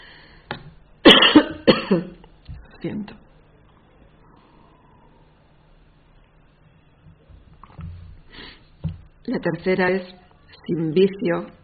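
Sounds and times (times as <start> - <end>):
person coughing harshly: 1.1 - 2.2
speech: 1.9 - 2.2, 2.8 - 3.2, 9.3 - 11.6.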